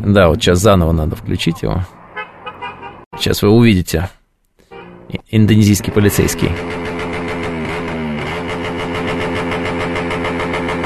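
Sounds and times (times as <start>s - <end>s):
speech: 0.0s - 2.0s, 3.2s - 4.2s, 5.3s - 6.8s
loud small moped engine revving through its exhaust: 4.9s - 10.8s.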